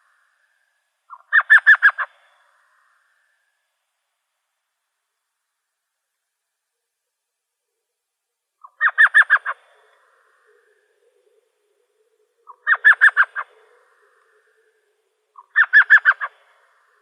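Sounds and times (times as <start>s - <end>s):
Elf Owl chattering call in Arizona: 1.1s - 2.1s, 8.6s - 9.6s, 12.4s - 14.4s, 15.3s - 16.4s.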